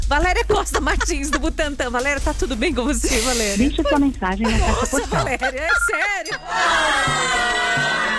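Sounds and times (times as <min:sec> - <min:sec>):
laughter: 0:00.1 - 0:01.8, 0:03.7 - 0:08.1
speech: 0:00.1 - 0:07.9
person hiccuping: 0:04.9 - 0:06.2.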